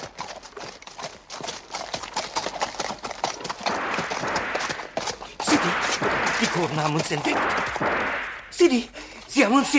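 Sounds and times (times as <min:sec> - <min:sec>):
horses trotting with hooves clip-clopping: 0:00.0 - 0:08.0
speech: 0:06.6 - 0:08.0, 0:08.6 - 0:09.7.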